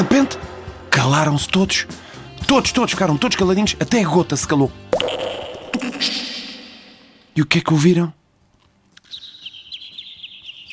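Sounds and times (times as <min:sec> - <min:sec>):
speech: 0:00.0 - 0:00.4, 0:01.0 - 0:06.2, 0:07.4 - 0:08.2
small bird chirping in a rapid trill: 0:09.0 - 0:10.7.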